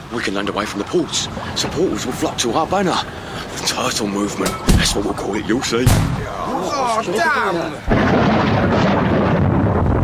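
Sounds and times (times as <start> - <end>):
speech: 0.1 - 9.0
thunder rumbling: 7.9 - 10.0.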